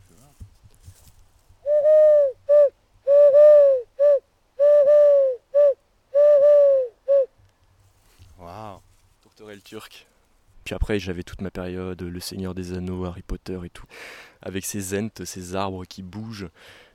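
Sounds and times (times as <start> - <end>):
person imitating a turtle dove's cooing: 1.6 - 7.3
speech: 9.7 - 16.9.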